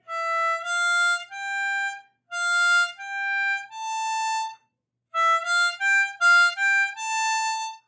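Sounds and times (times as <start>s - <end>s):
harmonica playing ascending C major triplets: 0.1s - 4.5s, 5.2s - 7.8s.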